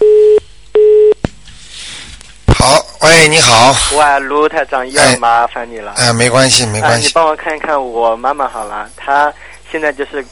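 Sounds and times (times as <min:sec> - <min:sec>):
busy tone beeps after a dropped phone call: 0:00.0 - 0:01.2
speech: 0:03.1 - 0:10.3.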